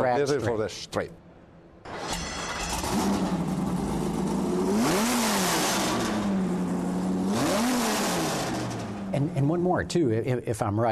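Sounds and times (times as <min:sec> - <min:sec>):
speech: 0:00.2 - 0:01.2, 0:09.1 - 0:10.8
Viper V10 engine in a drag-racing Challenger idling and revving: 0:02.5 - 0:09.9.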